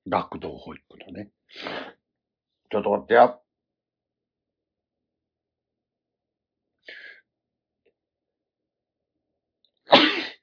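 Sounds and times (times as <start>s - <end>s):
speech: 0.1s - 2.0s, 2.7s - 3.4s
person sneezing: 9.9s - 10.4s.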